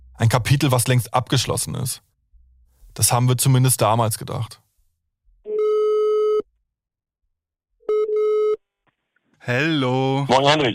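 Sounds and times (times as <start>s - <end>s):
speech: 0.2s - 2.1s, 3.0s - 4.6s, 9.5s - 10.7s
telephone line beeps while placing a call: 5.5s - 6.4s, 7.9s - 8.6s.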